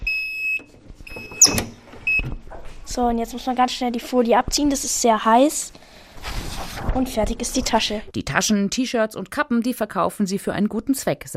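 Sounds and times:
heat press beeping after lever pressed down to print a cotton bag: 0.0s - 2.4s
speech: 2.9s - 5.8s, 6.9s - 11.3s.

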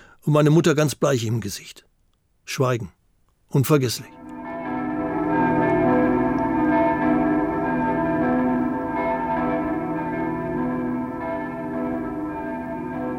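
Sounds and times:
speech: 0.2s - 1.9s, 2.5s - 4.2s
church bells in Berlin ringing: 4.1s - 13.1s.

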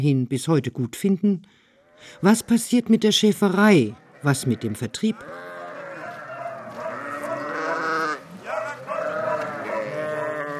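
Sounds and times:
speech: 0.0s - 5.5s
sheep bleating in sheep stables: 4.0s - 10.5s.

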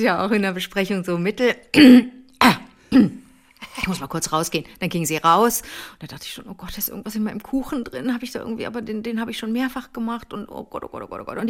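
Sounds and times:
speech: 0.0s - 11.4s
voice imitating a woman clearing her throat: 1.7s - 3.3s.

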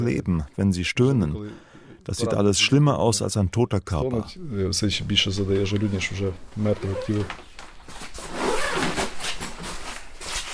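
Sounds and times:
speech: 0.0s - 8.3s
body bag zipper being pulled open: 8.2s - 9.8s.

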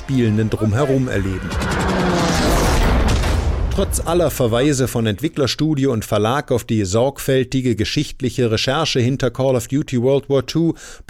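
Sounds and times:
speech: 0.1s - 2.2s, 3.8s - 11.0s
video game explosions booming: 1.4s - 4.8s.

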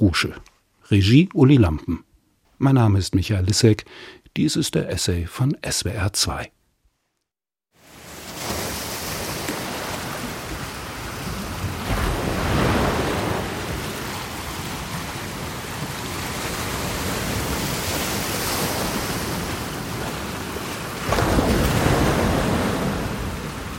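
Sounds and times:
speech: 0.0s - 6.6s
ocean surf rushing in a seashell held to the ear in Lower Saxony Germany: 7.8s - 23.7s.

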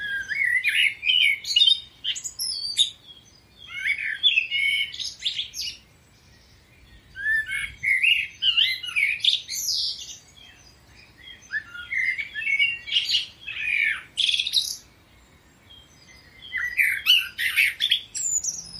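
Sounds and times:
common blackbird singing: 0.0s - 18.7s.

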